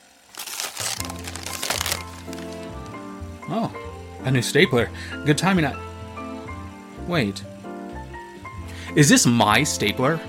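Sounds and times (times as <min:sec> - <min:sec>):
newspaper gift wrapping being torn open: 0:00.0 - 0:02.9
speech: 0:01.0 - 0:01.5, 0:03.5 - 0:05.9, 0:07.1 - 0:07.5, 0:09.0 - 0:10.2.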